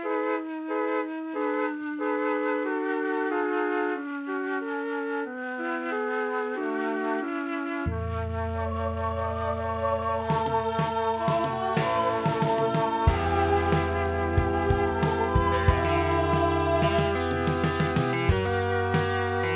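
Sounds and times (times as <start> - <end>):
mellotron flute: 0.2 - 19.5.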